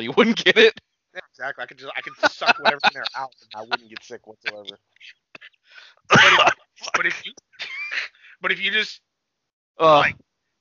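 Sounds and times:
speech: 0:00.0 - 0:00.8, 0:01.4 - 0:09.1, 0:09.8 - 0:10.3
laughter: 0:01.6 - 0:04.7, 0:06.1 - 0:08.3
person coughing harshly: 0:06.1 - 0:07.2.

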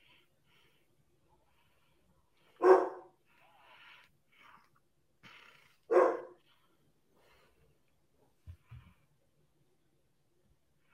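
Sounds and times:
dog barking in a horror film: 0:02.6 - 0:03.2, 0:05.9 - 0:06.4.

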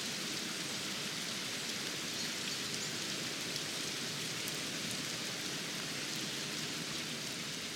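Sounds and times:
steady dense rain falling outside an open window: 0:00.0 - 0:07.7.

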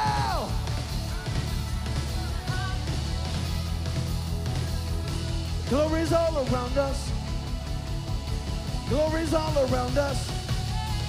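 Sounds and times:
high yell sliding downward: 0:00.0 - 0:00.8
audience screaming and shouting in worship: 0:00.0 - 0:11.0
steady sustained music: 0:00.0 - 0:11.0
speech: 0:05.7 - 0:07.2, 0:08.9 - 0:10.3.

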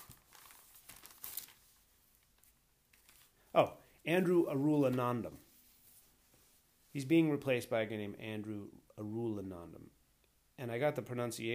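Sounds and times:
piece of paper crinkling while someone searches for a note: 0:00.0 - 0:03.4
speech: 0:03.6 - 0:05.4, 0:06.9 - 0:10.0, 0:10.6 - 0:11.5.

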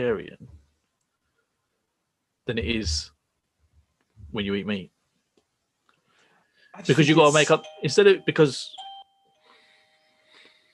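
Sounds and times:
speech: 0:00.0 - 0:00.6, 0:02.5 - 0:03.2, 0:04.3 - 0:04.9, 0:06.8 - 0:08.8
soft noise: 0:00.0 - 0:10.7
doorbell ringing with a bright electronic tone: 0:07.6 - 0:10.3.

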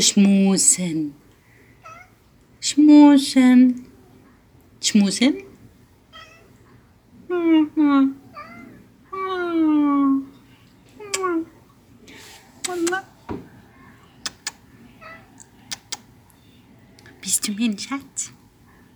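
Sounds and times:
speech: 0:00.0 - 0:01.2, 0:02.6 - 0:03.9, 0:04.8 - 0:05.5, 0:07.3 - 0:08.2, 0:12.7 - 0:13.1, 0:17.3 - 0:18.4
male house cat meowing and chirping: 0:01.8 - 0:02.2, 0:06.1 - 0:06.6, 0:08.3 - 0:10.2, 0:11.0 - 0:11.5, 0:14.3 - 0:16.0
soft clicks: 0:14.2 - 0:14.6.

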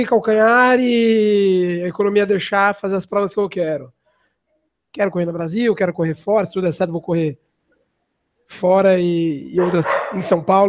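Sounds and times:
speech: 0:00.0 - 0:04.0, 0:04.9 - 0:07.4, 0:08.5 - 0:10.6
dog barking: 0:09.6 - 0:10.5.

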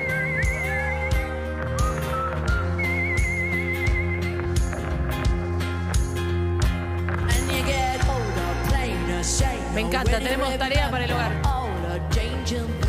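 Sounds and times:
person whistling a wavering melody: 0:00.0 - 0:04.7
steady instrumental music with a regular beat: 0:00.0 - 0:12.8
speech: 0:09.8 - 0:11.5.

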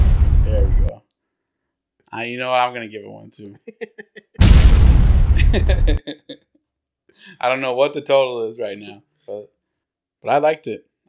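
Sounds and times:
small explosion sound effect: 0:00.0 - 0:00.9, 0:04.4 - 0:06.0
speech: 0:02.2 - 0:04.2, 0:05.5 - 0:06.4, 0:07.2 - 0:09.5, 0:10.2 - 0:11.0
laughter: 0:03.6 - 0:04.4, 0:05.4 - 0:06.5.

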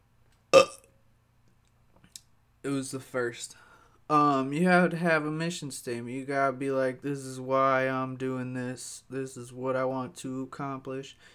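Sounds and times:
small burp: 0:00.5 - 0:00.9
speech: 0:02.6 - 0:11.3.

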